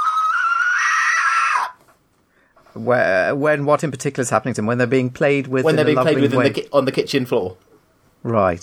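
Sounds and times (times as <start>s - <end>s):
frog screaming: 0.0s - 1.8s
speech: 2.8s - 8.6s.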